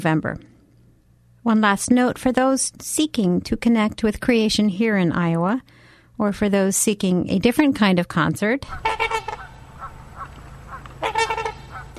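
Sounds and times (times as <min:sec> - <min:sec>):
speech: 0:00.0 - 0:00.5, 0:01.4 - 0:09.2
low steady hum: 0:00.0 - 0:11.9
trumpeter swans and Canada geese honking at Beamer's Pond west of Webster City, Iowa: 0:08.7 - 0:11.9.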